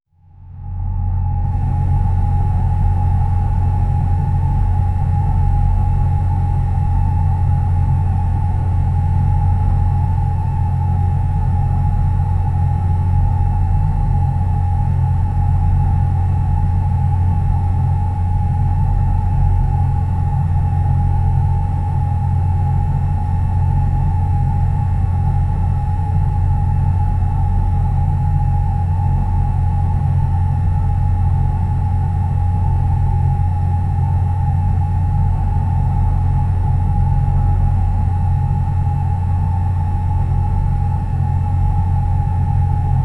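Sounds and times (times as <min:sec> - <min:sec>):
sci-fi room ambience: 0:00.2 - 0:43.0.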